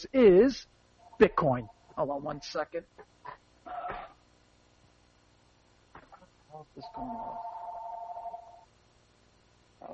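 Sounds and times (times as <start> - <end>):
speech: 0.0 - 4.0, 6.6 - 7.6
telephone ringing with a steady electronic trill: 6.9 - 8.7.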